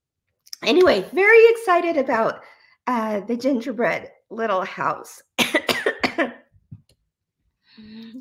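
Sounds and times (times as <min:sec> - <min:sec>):
speech: 0:00.6 - 0:05.6, 0:06.2 - 0:06.4, 0:07.8 - 0:08.1
loud harsh coughing fit: 0:05.4 - 0:06.5.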